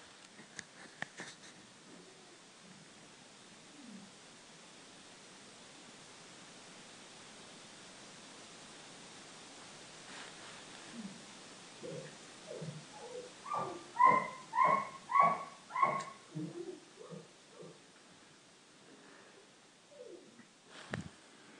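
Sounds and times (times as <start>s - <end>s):
dog whimpering: 11.8s - 17.8s
dog barking: 13.1s - 16.2s.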